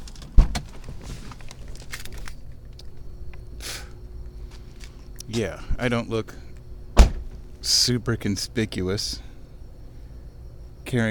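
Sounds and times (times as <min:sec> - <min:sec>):
light clicks and rattles: 0:00.0 - 0:03.4
rustling and shuffling as someone climbs out of a car: 0:00.0 - 0:03.5, 0:04.2 - 0:05.9
speech: 0:05.3 - 0:06.4, 0:07.7 - 0:09.3, 0:10.9 - 0:11.1
car door unlatching with a sharp clunk: 0:07.0 - 0:07.5.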